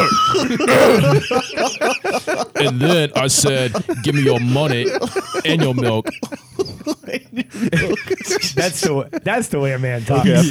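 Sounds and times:
speech: 0:00.6 - 0:01.9, 0:02.6 - 0:06.4, 0:07.4 - 0:10.5
person faking a sneeze with their voice: 0:00.7 - 0:01.1.

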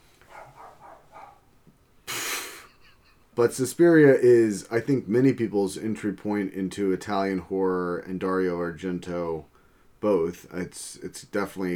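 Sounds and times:
dogs barking: 0:00.2 - 0:01.6
loud broadband hiss: 0:02.0 - 0:05.4
speech: 0:03.4 - 0:11.7.

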